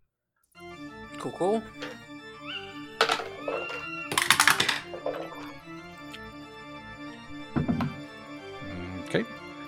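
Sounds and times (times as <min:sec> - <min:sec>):
speech: 0:01.2 - 0:01.9, 0:09.1 - 0:09.4
dice clattering down through a dice tower: 0:03.0 - 0:05.0.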